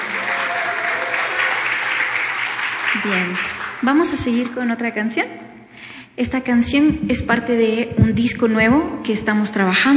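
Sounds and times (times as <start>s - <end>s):
concert audience applause: 0.0s - 4.2s
speech: 3.0s - 5.5s, 6.2s - 9.9s.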